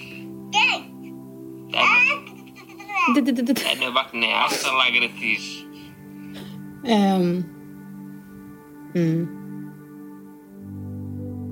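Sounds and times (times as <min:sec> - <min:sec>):
baby babbling in high-pitched bursts: 0:00.5 - 0:01.0, 0:01.7 - 0:03.3
speech: 0:03.1 - 0:05.6, 0:06.8 - 0:07.6, 0:09.0 - 0:09.4.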